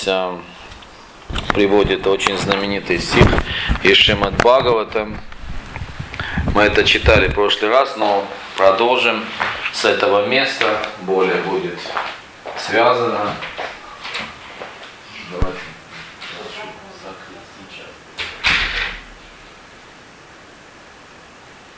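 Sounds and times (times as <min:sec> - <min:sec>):
speech: 0:00.0 - 0:00.6, 0:01.3 - 0:05.3, 0:06.6 - 0:13.6
door closed by a child with a sharp thud: 0:18.2 - 0:19.2.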